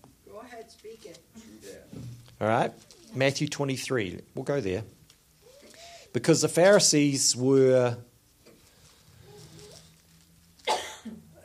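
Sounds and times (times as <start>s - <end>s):
quiet low room hum: 0.0s - 11.4s
speech: 0.6s - 5.0s, 6.1s - 8.1s
person coughing: 10.6s - 11.4s.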